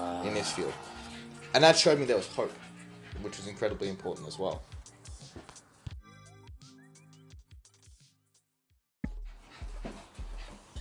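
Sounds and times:
female dogs whining: 0:00.0 - 0:03.6
two female dogs on heat panting: 0:00.0 - 0:05.6, 0:09.1 - 0:10.7
speech: 0:00.2 - 0:04.7.

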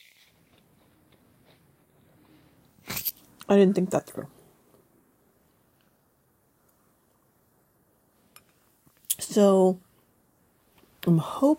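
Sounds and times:
person chewing crunchy granola cookie: 0:00.0 - 0:02.1
speech: 0:03.5 - 0:04.4, 0:09.4 - 0:09.8, 0:11.0 - 0:11.5.

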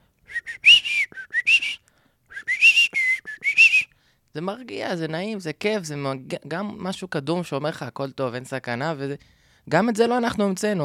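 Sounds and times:
person whistling a bird-like song: 0:00.2 - 0:04.0
speech: 0:04.4 - 0:10.8.

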